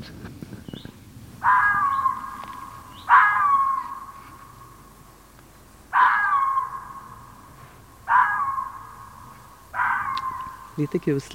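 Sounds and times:
female fox barking: 0:01.4 - 0:04.8, 0:05.9 - 0:11.0
speech: 0:10.8 - 0:11.3.

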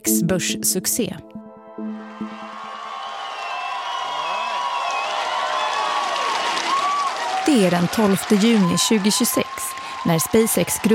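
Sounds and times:
speech: 0:00.1 - 0:01.4, 0:07.5 - 0:10.9
brief musical or tonal opening: 0:00.4 - 0:05.1
large crowd of employees cheering and whooping in Texas: 0:01.9 - 0:10.9
scattered clapping: 0:02.6 - 0:10.9.

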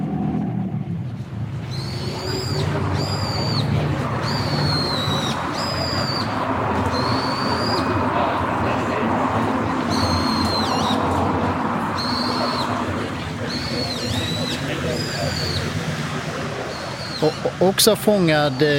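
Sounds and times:
constant loud rumble of city noise: 0:00.0 - 0:18.7
train passing: 0:00.8 - 0:18.6
Japanese bulbul calling: 0:01.6 - 0:08.4, 0:09.7 - 0:16.0, 0:16.6 - 0:17.7
speech: 0:17.6 - 0:18.7.

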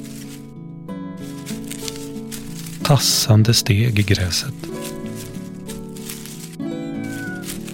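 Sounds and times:
speech: 0:02.9 - 0:04.9
cat meowing outside a tent: 0:06.6 - 0:07.7.

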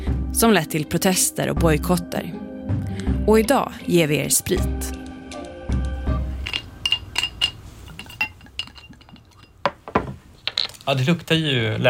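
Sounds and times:
speech: 0:00.4 - 0:05.0, 0:10.9 - 0:11.8
glasses clinking in a toast: 0:06.2 - 0:10.9.

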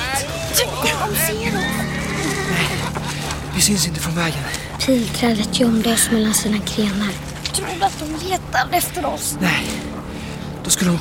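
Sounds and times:
steady low rumble: 0:00.4 - 0:10.9
horses ridden by soldiers neighing and whinnying: 0:00.8 - 0:03.5
speech: 0:03.6 - 0:09.9, 0:10.7 - 0:10.9.

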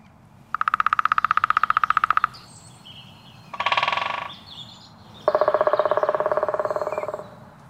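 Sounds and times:
woodpecker drumming in a forest: 0:00.5 - 0:02.5, 0:03.5 - 0:04.4, 0:05.2 - 0:07.4
short harsh woodpecker call: 0:00.5 - 0:07.4.

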